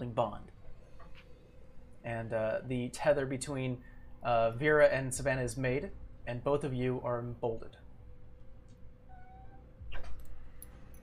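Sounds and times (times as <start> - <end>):
speech: 0.0 - 0.6, 2.0 - 7.8
low rumble: 0.0 - 11.0
cat meowing: 9.1 - 9.7.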